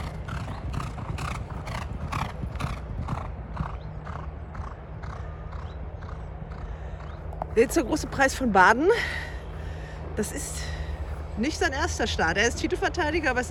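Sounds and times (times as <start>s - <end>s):
horses walking past with hooves clip-clopping: 0.0s - 8.2s
low continuous outdoor rumble: 0.0s - 13.4s
speech: 7.6s - 9.3s, 10.2s - 10.7s, 11.4s - 13.4s.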